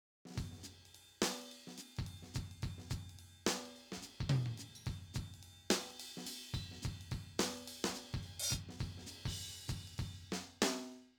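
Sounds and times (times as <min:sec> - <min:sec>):
Simmons SD1200 electronic drum kit: 0:00.4 - 0:10.3.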